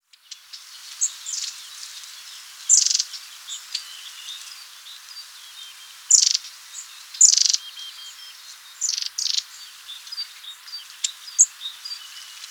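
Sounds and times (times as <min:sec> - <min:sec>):
faint high hiss: 0:00.0 - 0:12.5
long-tailed tit giving thin very high notes and rippling bursts: 0:02.7 - 0:05.2, 0:06.1 - 0:12.5.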